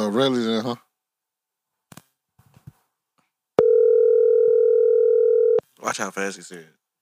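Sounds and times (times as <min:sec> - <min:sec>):
speech: 0:00.1 - 0:00.9, 0:05.8 - 0:06.8
steady electronic telephone call tone on an unanswered call: 0:03.6 - 0:05.6.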